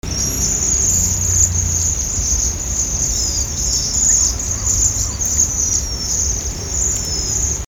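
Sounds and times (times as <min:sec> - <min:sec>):
flock of Japanese waxwings giving buzzing trills: 0:00.0 - 0:07.7
low rumbling background noise: 0:00.0 - 0:07.7.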